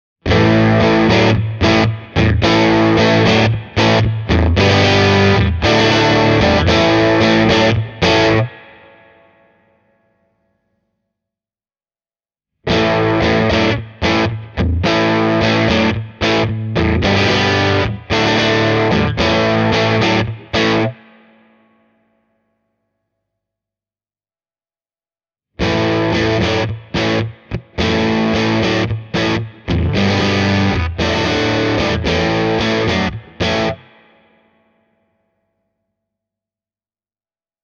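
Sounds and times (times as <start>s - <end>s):
Fender Telecaster electric guitar through a power amp, volume at two o'clock: 0.3s - 9.2s, 12.7s - 21.1s, 25.6s - 34.0s.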